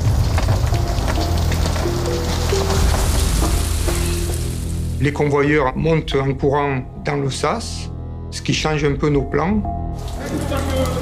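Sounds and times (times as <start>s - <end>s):
heavy rain pouring during very heavy thunderstorms: 0.0s - 5.2s, 10.0s - 10.9s
speech: 5.0s - 10.9s.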